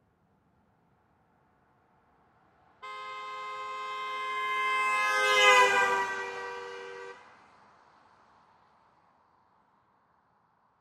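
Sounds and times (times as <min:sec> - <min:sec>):
2007 Pontiac G6 horn: 0:02.8 - 0:07.2.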